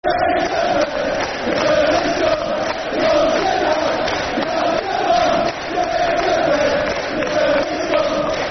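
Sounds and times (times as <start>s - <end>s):
football crowd chanting: 0.0s - 8.5s.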